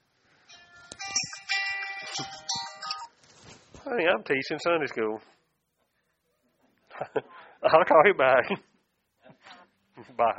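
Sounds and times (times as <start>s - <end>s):
mobile phone ringtone playing a bright electronic melody: 0.5s - 3.2s
speech: 2.2s - 2.4s, 3.9s - 5.4s, 7.1s - 8.7s, 10.2s - 10.3s.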